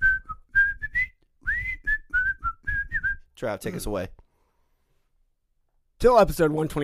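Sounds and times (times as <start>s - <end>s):
person whistling a short lively tune: 0.0s - 3.3s
speech: 3.4s - 4.2s, 6.0s - 6.8s.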